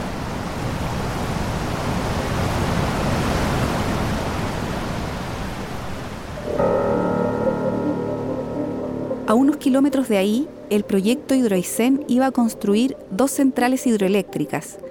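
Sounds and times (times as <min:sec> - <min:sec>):
powerful rushing river water at confluence: 0:00.0 - 0:09.0
steady droning tone: 0:06.5 - 0:13.1
speech: 0:09.3 - 0:14.8.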